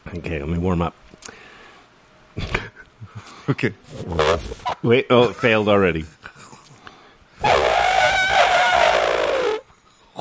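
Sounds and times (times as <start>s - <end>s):
speech: 0.1s - 1.0s, 3.5s - 6.2s
person imitating an elephant trumpeting: 7.4s - 9.6s.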